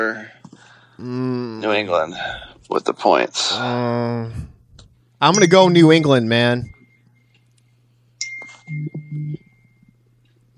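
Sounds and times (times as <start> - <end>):
speech: 1.0 - 4.5, 5.2 - 6.7
phone notification low buzzing tones: 3.8 - 10.5
phone notification ding: 5.3 - 6.4, 8.2 - 9.9.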